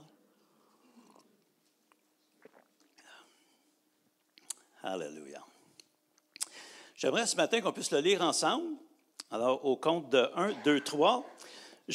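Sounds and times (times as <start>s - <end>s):
person taking a small sip of water: 0.4s - 4.7s
swallow: 0.7s - 1.4s, 2.3s - 3.0s
speech: 4.8s - 5.6s, 7.0s - 11.6s.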